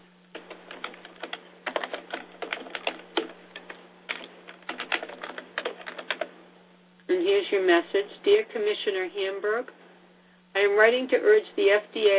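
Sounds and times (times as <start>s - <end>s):
typing on a computer keyboard into an online contact form: 0.4s - 6.3s
speech: 7.3s - 9.8s, 10.6s - 12.1s.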